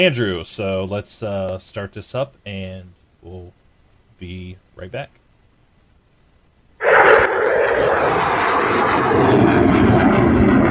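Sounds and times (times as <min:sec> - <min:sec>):
speech: 0:00.0 - 0:03.6, 0:04.2 - 0:05.2
F-16 fighter jet flying overhead: 0:06.8 - 0:10.7.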